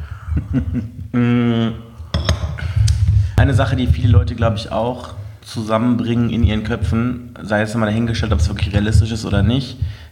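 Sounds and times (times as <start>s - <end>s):
speech: 0.4s - 1.8s, 3.5s - 10.0s
ceramic coffee cups clinking together in a toast: 2.1s - 2.6s.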